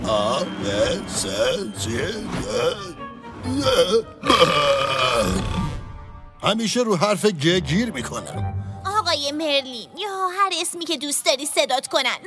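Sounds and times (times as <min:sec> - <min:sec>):
speech: 0:00.1 - 0:05.6, 0:06.4 - 0:12.2
person burping out a string of letters: 0:02.4 - 0:06.0.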